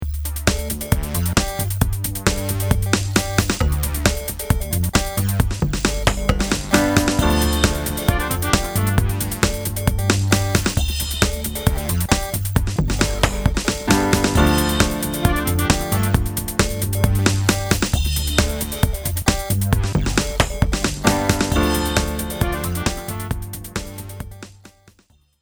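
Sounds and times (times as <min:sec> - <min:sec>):
electro groove music: 0:00.0 - 0:24.9.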